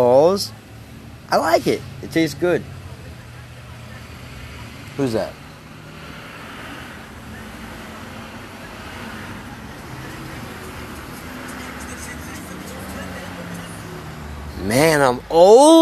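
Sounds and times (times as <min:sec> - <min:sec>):
speech: 0:00.0 - 0:00.6, 0:01.3 - 0:02.8, 0:05.0 - 0:05.4, 0:14.6 - 0:15.8
car rolling past with road rumble: 0:00.8 - 0:15.2
faint indistinct voices: 0:02.6 - 0:14.5.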